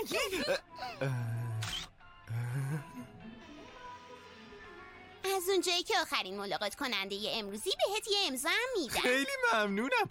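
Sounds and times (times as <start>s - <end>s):
speech: 0.0s - 1.4s, 5.5s - 10.0s
camera shutter click taking a photo: 1.6s - 1.9s.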